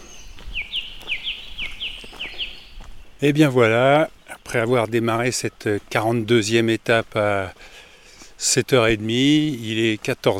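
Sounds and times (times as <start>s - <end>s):
bird repeating paired downward-sliding chirps in woodland: 0.0s - 6.2s
soft hazy chorus of birdsong in woodland: 0.0s - 8.4s
speech: 3.2s - 7.7s, 8.4s - 10.3s.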